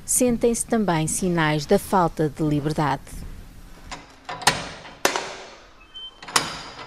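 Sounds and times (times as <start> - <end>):
speech: 0.1 - 3.2
heavy old metal prison door creaking and clanking as it is moved: 3.9 - 6.8.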